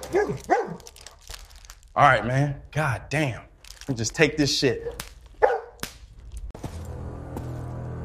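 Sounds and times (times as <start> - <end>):
big dog barking and whimpering: 0.0 - 0.9, 4.8 - 5.8
speech: 0.3 - 0.6, 2.0 - 5.1.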